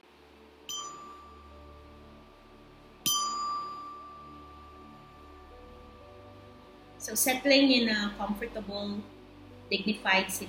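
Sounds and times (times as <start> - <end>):
meditation chime struck as a bell: 0.7 - 2.2, 3.0 - 5.5
speech: 7.0 - 10.4.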